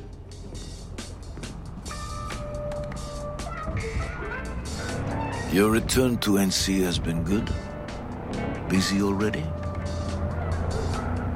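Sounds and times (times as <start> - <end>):
video game car interior road and engine drone while driving: 0.0 - 11.3
speech: 5.5 - 7.7, 8.7 - 9.6.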